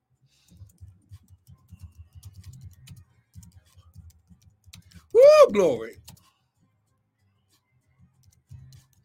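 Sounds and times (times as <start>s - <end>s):
typing a social media post on a keyboard: 0.4s - 5.1s, 6.0s - 6.3s, 8.2s - 9.0s
speech: 5.1s - 6.1s.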